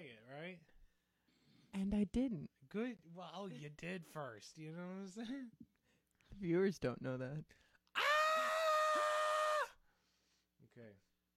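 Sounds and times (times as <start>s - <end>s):
speech: 0.3s - 0.8s, 1.7s - 5.7s, 6.3s - 8.1s, 10.7s - 11.1s
man screaming: 8.0s - 9.8s.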